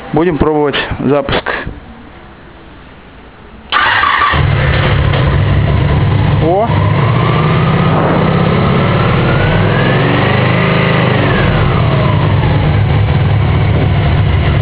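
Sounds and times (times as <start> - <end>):
speech: 0.1 - 1.8
motorcycle engine starting, idling and revving: 3.8 - 14.6.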